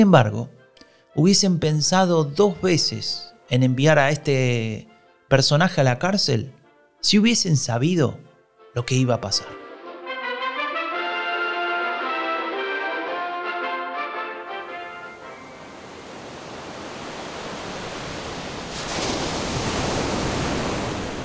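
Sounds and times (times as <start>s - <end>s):
speech: 0.0s - 0.6s, 1.2s - 9.6s
tonal music: 0.6s - 16.3s
Indian Ocean surf: 14.5s - 21.2s
louder wave surging and breaking: 14.6s - 21.2s.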